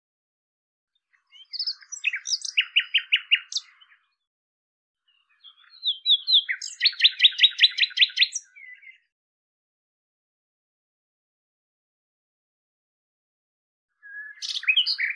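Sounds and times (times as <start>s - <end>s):
common nightingale song: 1.0s - 4.3s, 5.0s - 9.1s, 13.9s - 15.1s.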